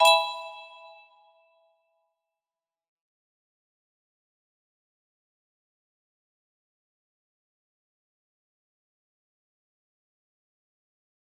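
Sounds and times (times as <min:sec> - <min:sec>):
E chord: 0:00.0 - 0:01.0
music box melody: 0:00.0 - 0:01.0.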